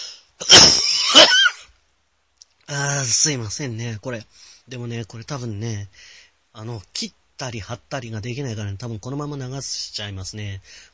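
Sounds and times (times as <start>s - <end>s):
person choking in a coughing fit: 0.4s - 1.6s
speech: 2.7s - 10.9s.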